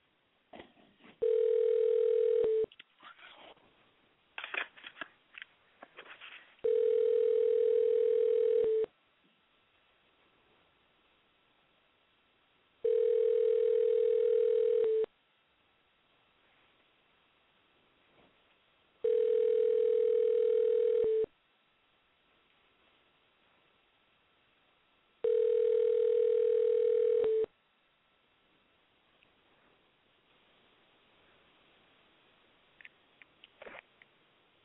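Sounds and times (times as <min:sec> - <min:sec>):
rustling: 0:00.5 - 0:07.3, 0:32.8 - 0:34.1
telephone ringback tone while a call is being placed: 0:01.2 - 0:02.7, 0:06.6 - 0:08.9, 0:12.8 - 0:15.1, 0:19.0 - 0:21.3, 0:25.2 - 0:27.5.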